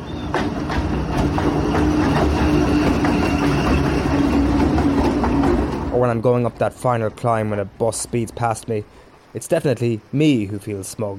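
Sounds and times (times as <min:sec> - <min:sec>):
train passing along the tracks: 0:00.0 - 0:10.6
faint rhythmic clatter of a train on tracks: 0:00.3 - 0:05.9
speech: 0:06.0 - 0:11.1.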